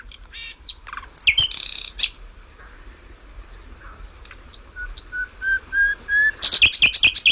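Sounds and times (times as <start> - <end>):
nightingale singing at night at Río Frío in Segovia Spain: 0.0 - 2.2, 4.2 - 7.3
steady drone of insects: 0.0 - 7.3.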